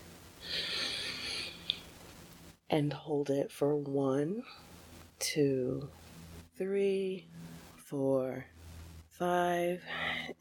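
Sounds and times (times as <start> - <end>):
single deep breath drawn in by one person: 0.4 - 1.7
speech: 2.7 - 6.0, 6.6 - 8.6, 9.2 - 10.3.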